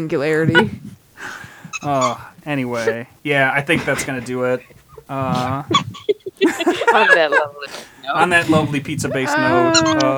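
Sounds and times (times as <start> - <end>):
speech: 0.0 - 6.0, 6.9 - 10.1
laughter: 0.0 - 10.1
dog's squeaky toy squeaking: 1.7 - 2.9, 9.3 - 10.1.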